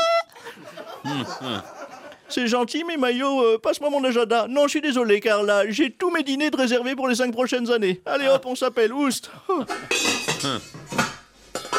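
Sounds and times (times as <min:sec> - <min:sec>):
laughter: 0:00.0 - 0:02.3
speech: 0:01.0 - 0:10.8
pots and pans clattering and clanging: 0:09.7 - 0:11.7.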